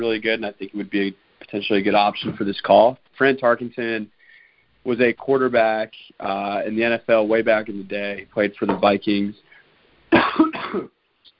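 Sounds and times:
speech: 0.0s - 4.2s, 4.8s - 9.4s, 10.2s - 11.0s
person coughing with a raspy chesty sound: 10.1s - 10.9s.

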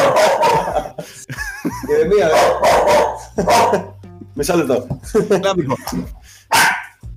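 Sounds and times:
dog barking in short loud bursts: 0.0s - 0.9s, 2.2s - 4.0s, 6.5s - 7.0s
laughter: 0.0s - 6.3s
speech: 2.0s - 2.7s, 3.4s - 6.7s.

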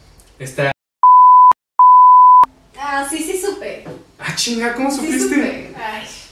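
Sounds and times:
speech: 0.4s - 0.8s, 2.9s - 6.2s
censor bleeps covering a name: 1.0s - 2.5s.

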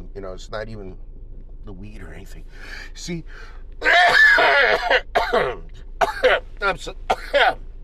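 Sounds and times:
speech: 0.2s - 7.7s
harsh coughs from a post-nasal drip: 3.8s - 6.5s, 7.1s - 7.6s.

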